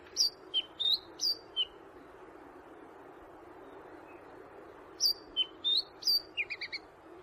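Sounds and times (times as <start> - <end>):
Chatham Island black robin song: 0.0 - 1.8, 3.6 - 7.2.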